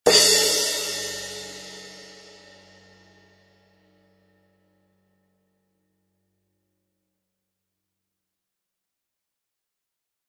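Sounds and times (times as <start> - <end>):
15-inch crash cymbal: 0.1 - 4.1.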